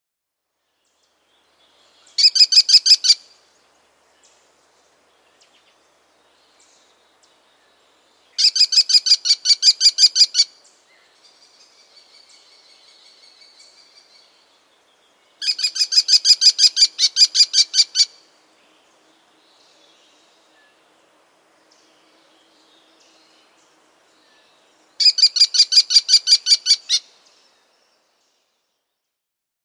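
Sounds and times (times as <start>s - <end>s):
American kestrel calling: 2.2s - 3.4s, 8.4s - 10.6s, 15.4s - 18.2s, 25.0s - 27.1s.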